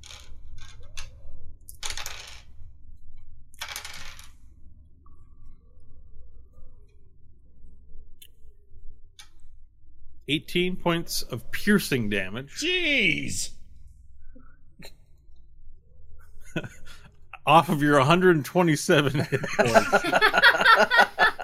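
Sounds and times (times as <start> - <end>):
dice rattling and clattering on a table during a tabletop role-playing game: 0.0 - 2.6, 3.6 - 4.5
speech: 10.3 - 13.6, 17.5 - 21.0
laughter: 16.4 - 17.0, 19.0 - 21.4.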